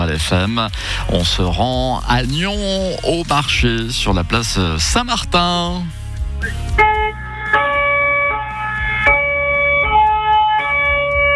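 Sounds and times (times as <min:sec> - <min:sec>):
speech: 0:00.1 - 0:06.9
fire ladder truck low engine rumble: 0:00.7 - 0:06.3
fire ladder truck two-tone siren: 0:06.8 - 0:11.3.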